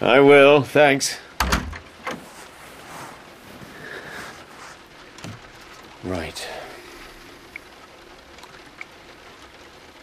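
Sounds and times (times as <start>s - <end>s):
speech: 0.0s - 1.3s, 6.0s - 6.6s
door pushed shut with soft thud: 1.4s - 2.2s
faint hiss: 2.0s - 7.9s.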